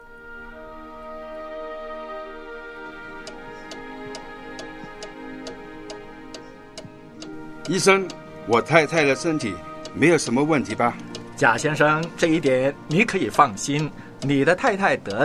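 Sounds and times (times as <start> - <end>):
sustained mellow musical drone: 0.0 - 15.2
wall clock ticking: 3.2 - 15.2
speech: 7.7 - 15.2.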